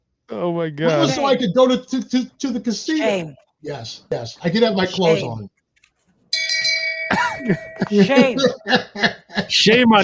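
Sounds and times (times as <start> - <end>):
speech: 0.3 - 5.5, 7.1 - 10.0
laughter: 0.4 - 2.6, 3.8 - 5.3, 7.1 - 10.0
bright handbell ringing: 6.4 - 8.3.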